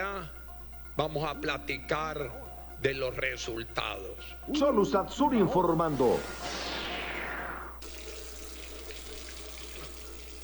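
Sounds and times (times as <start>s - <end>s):
speech: 1.0s - 6.6s
water running from an open tap filling a vessel: 7.8s - 10.4s.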